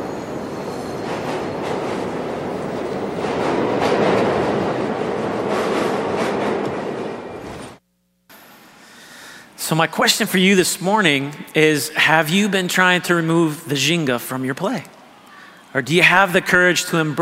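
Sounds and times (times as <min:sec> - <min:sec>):
train clattering on rails: 0:00.0 - 0:07.8
speech: 0:09.7 - 0:15.0, 0:15.7 - 0:17.2.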